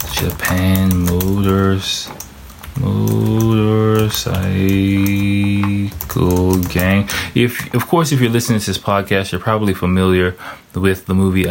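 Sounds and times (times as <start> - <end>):
typing on a computer keyboard: 0.0 - 7.1
speech: 0.2 - 2.2, 2.8 - 11.4.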